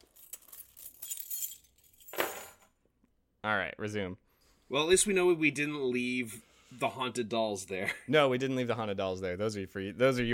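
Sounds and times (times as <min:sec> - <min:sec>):
metal keys taken out of a pocket jangling: 0:00.0 - 0:02.6
louder rustling jingle: 0:00.0 - 0:02.7
speech: 0:03.5 - 0:10.3.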